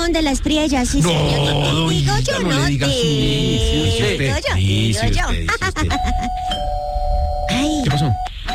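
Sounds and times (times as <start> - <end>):
speech: 0.1 - 6.7, 7.5 - 8.5
loud overlapping voices: 1.0 - 5.3
electronic doorbell chime ringing: 6.4 - 7.1.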